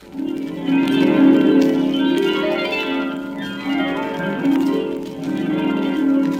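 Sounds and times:
harp magic wand effect: 0.1s - 6.3s.

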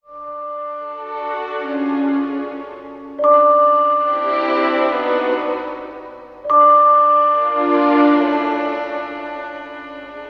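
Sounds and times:
sad vibraphone loop: 0.0s - 9.2s
sad strings loop: 0.0s - 10.2s.

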